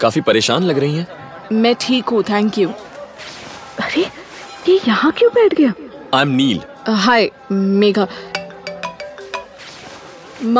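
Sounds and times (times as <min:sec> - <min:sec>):
speech: 0:00.0 - 0:04.1, 0:04.7 - 0:08.4, 0:10.4 - 0:10.5
mobile phone ringtone with bright rhythmic electronic tones: 0:08.1 - 0:09.6.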